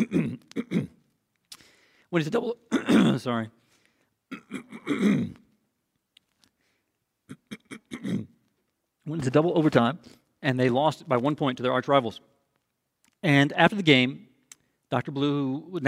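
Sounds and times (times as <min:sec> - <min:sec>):
speech: 0:00.0 - 0:00.4, 0:02.1 - 0:03.6, 0:04.3 - 0:05.4, 0:09.1 - 0:12.3, 0:13.2 - 0:14.3, 0:14.9 - 0:15.8
person clearing throat: 0:00.0 - 0:01.0, 0:02.7 - 0:03.3, 0:04.3 - 0:05.6, 0:07.3 - 0:08.4
person coughing: 0:00.0 - 0:01.0, 0:02.7 - 0:03.3, 0:04.3 - 0:05.5, 0:07.3 - 0:08.4.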